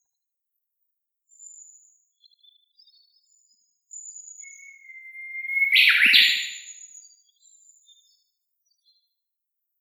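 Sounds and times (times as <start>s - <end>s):
Japanese bush warbler valley-crossing call: 2.5s - 8.2s.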